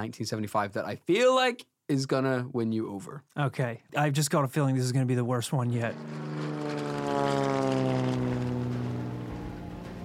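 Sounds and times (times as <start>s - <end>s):
speech: 0.0s - 8.0s
propeller plane flying overhead: 5.6s - 10.0s.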